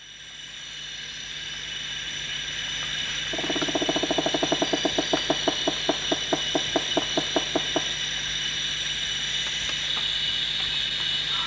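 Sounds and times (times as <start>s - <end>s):
steady high insect drone: 0.0s - 11.4s
rufous woodpecker knocking: 3.3s - 8.2s.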